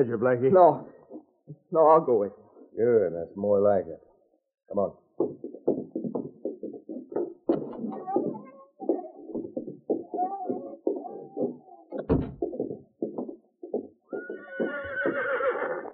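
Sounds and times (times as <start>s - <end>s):
speech: 0.0s - 4.1s, 4.7s - 5.7s
horse hooves clip-clopping: 0.4s - 1.7s, 5.2s - 15.9s
horse whinnying: 14.1s - 15.9s.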